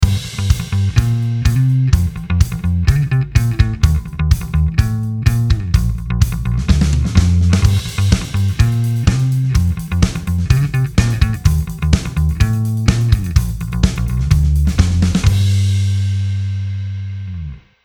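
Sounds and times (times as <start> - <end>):
modern bass amp designer tone: 0.0 - 17.7.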